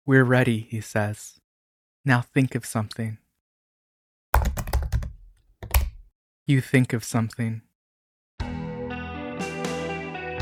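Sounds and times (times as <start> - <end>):
speech: 0.1 - 1.4, 2.0 - 3.2, 6.5 - 7.7
typing on a computer keyboard: 4.4 - 6.1.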